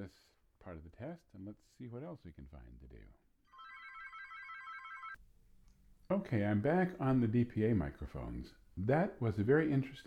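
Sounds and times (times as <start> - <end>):
speech: 0.0 - 3.2, 6.1 - 10.0
telephone bell ringing: 3.5 - 5.2.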